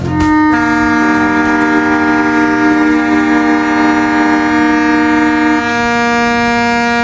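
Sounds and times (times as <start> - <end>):
sirens blaring at a commemoration ceremony: 0.0 - 7.0.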